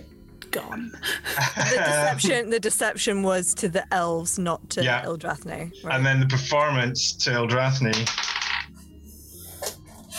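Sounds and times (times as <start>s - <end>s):
speech: 0.6s - 8.3s
laughter: 1.0s - 2.5s
dice rattling and tumbling across a hard tabletop: 7.9s - 8.7s.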